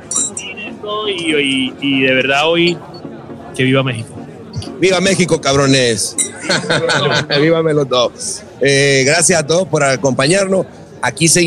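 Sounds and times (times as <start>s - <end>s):
glasses clinking in a toast: 0.0s - 0.6s, 6.1s - 6.6s
murmur of voices: 0.0s - 11.4s
speech: 0.8s - 2.9s, 3.6s - 4.2s, 4.8s - 11.4s
laughter: 6.2s - 7.7s.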